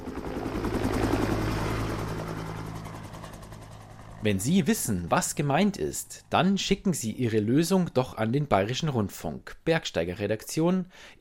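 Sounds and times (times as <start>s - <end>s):
helicopter rotor beating: 0.0s - 4.2s
helicopter engine roar: 0.0s - 5.8s
speech: 4.2s - 11.1s.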